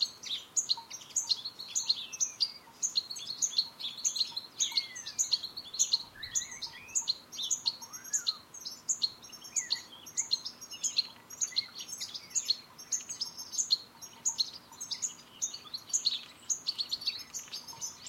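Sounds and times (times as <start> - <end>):
European goldfinch Carduelis carduelis giving rapid twittering chirps: 0.0 - 18.0.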